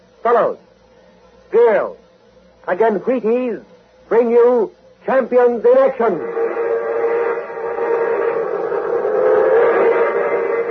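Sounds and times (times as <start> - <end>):
speech: 0.2 - 0.7, 2.7 - 6.4
passenger train roaring past: 5.6 - 10.6.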